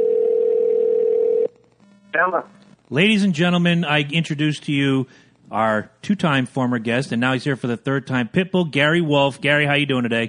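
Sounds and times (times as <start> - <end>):
telephone dial tone: 0.0 - 1.6
speech: 2.2 - 10.2.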